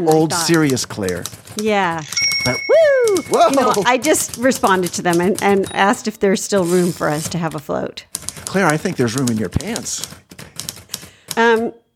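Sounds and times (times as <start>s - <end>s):
speech: 0.0s - 10.2s, 11.4s - 11.8s
typewriter key clacks: 0.6s - 5.8s, 8.2s - 11.5s.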